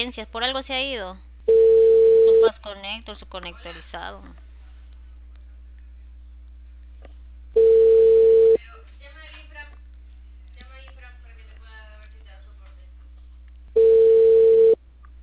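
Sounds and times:
speech: 0.0s - 1.7s, 2.4s - 4.4s
ringback tone of an unanswered telephone call: 1.5s - 2.5s, 7.6s - 8.6s, 13.8s - 14.8s.

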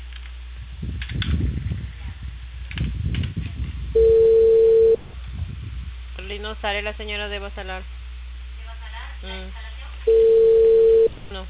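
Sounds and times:
ringback tone of an outgoing telephone call through the phone line: 4.0s - 5.0s, 10.1s - 11.2s
speech: 6.5s - 8.0s, 9.2s - 10.2s.

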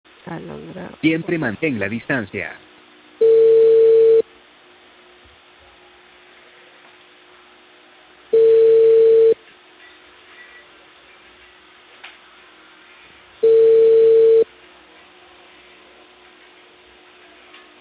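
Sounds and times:
speech: 0.3s - 2.6s
telephone ringback tone while a call is placed in Peru: 3.2s - 4.2s, 8.4s - 9.4s, 13.4s - 14.5s.

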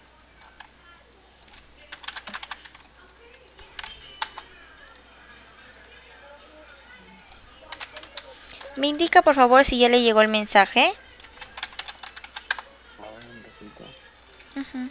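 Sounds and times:
keyboard typing a message during a customer-service phone call: 1.5s - 2.9s, 3.6s - 4.5s, 7.6s - 8.8s, 11.2s - 12.7s
speech: 8.8s - 11.0s.

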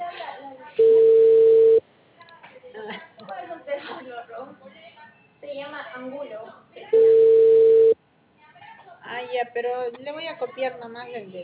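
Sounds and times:
telephone dial tone as a call is placed: 0.8s - 1.8s, 7.0s - 8.0s
speech: 9.9s - 11.4s.

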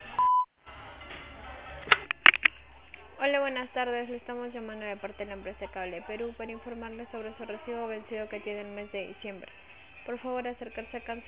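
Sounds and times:
voicemail beep tone before recording a message: 0.2s - 0.5s
speech: 3.2s - 11.2s.

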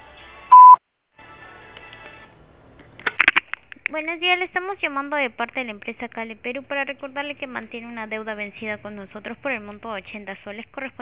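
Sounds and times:
faint noise: 0.0s - 11.0s
voicemail beep marking start of message recording: 0.5s - 0.8s
speech: 3.9s - 11.0s.

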